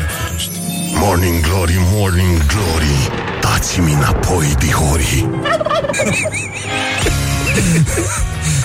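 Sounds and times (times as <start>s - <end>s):
speech: 0.4s - 8.4s
laughter: 5.3s - 8.6s
turkey gobbling: 5.4s - 6.7s.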